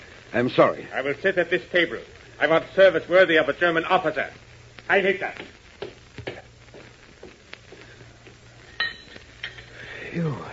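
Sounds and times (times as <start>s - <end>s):
quiet hum: 0.0s - 10.5s
speech: 0.3s - 5.6s
glass dropped and clinking: 8.8s - 9.8s.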